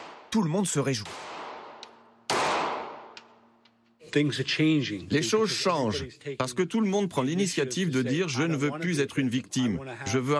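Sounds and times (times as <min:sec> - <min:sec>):
gunshot at a shooting range: 0:00.0 - 0:00.3, 0:01.0 - 0:03.2
speech: 0:00.3 - 0:01.4, 0:04.1 - 0:10.3.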